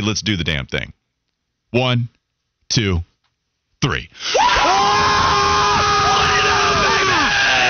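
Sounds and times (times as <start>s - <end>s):
speech: 0.0s - 1.0s, 1.7s - 3.1s, 3.8s - 5.0s
several voices yelling a sustained group war cry: 4.4s - 7.6s.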